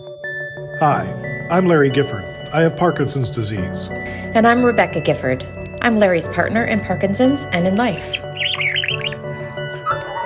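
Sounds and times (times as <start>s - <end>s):
speech: 0.8s - 8.3s
pet bird chirping and warbling: 7.9s - 10.2s.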